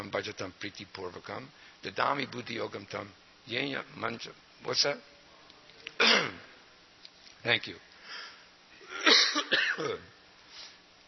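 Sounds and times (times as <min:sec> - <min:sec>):
speech: 0:00.0 - 0:05.1, 0:07.4 - 0:08.2, 0:09.1 - 0:10.1
person coughing: 0:06.0 - 0:06.5, 0:08.8 - 0:10.1.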